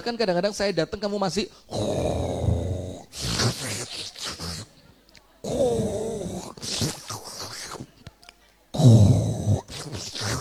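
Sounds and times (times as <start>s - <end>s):
speech: 0.0s - 2.3s
person imitating snoring with their voice: 1.7s - 4.7s, 5.4s - 7.9s, 8.8s - 10.3s.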